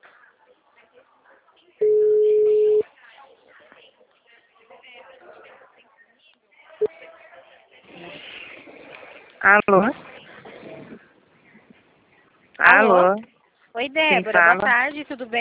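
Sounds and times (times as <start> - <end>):
telephone ringback tone while calling someone: 1.8 - 2.8
speech: 9.4 - 9.9, 13.9 - 15.3.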